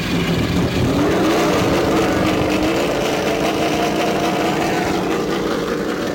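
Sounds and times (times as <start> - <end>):
race car engines roaring to life and revving as cars restart and pull away: 0.0 - 6.1.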